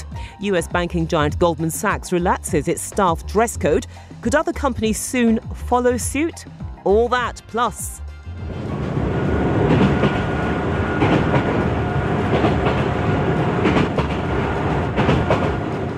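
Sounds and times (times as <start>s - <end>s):
speech: 0.4s - 8.6s
train wheels rumbling on rails: 8.4s - 15.9s
train wheels clickety-clack over rail joints: 9.6s - 15.9s.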